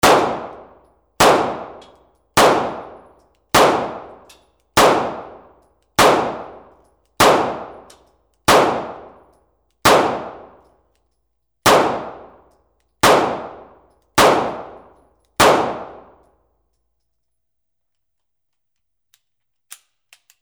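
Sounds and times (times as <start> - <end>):
9mm handgun shots: 0.0 - 9.2, 9.9 - 10.6, 11.7 - 12.4, 13.0 - 16.2.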